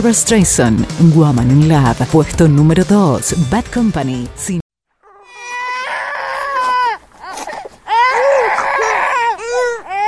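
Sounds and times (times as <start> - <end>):
speech: 0.0 - 4.6
child wailing: 5.0 - 10.0.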